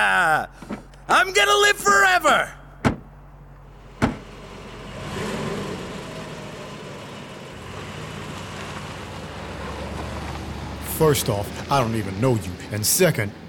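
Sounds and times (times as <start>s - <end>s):
speech: 0.0s - 2.6s, 11.0s - 13.4s
car engine rumbling as a car pulls off and drives away: 0.5s - 13.4s
car door shutting: 2.8s - 3.1s, 3.9s - 4.3s.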